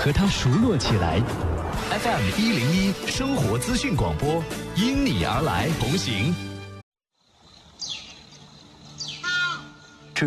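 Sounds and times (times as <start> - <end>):
speech: 0.0 - 6.5
Qinling golden eagle calling: 7.8 - 10.1.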